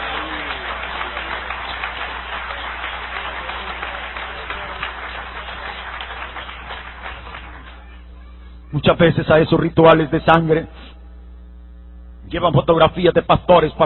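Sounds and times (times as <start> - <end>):
congregation clapping during a religious testimony: 0.0 - 8.4
speech: 8.7 - 10.8, 12.3 - 13.8.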